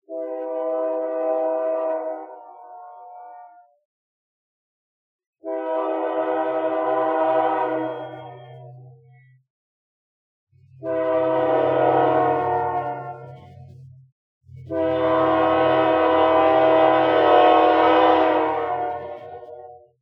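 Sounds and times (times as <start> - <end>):
distant train horn: 0.1 - 3.7, 5.4 - 8.7, 10.8 - 13.6, 14.6 - 19.8.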